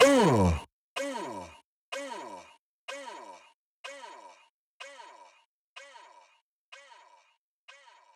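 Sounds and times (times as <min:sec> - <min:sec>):
vocal uuh sound for future EDM: 0:00.0 - 0:01.4.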